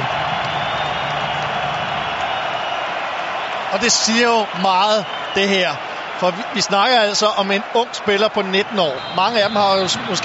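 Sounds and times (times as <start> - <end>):
large stadium crowd cheering: 0.0 - 10.2
speech: 3.7 - 10.2.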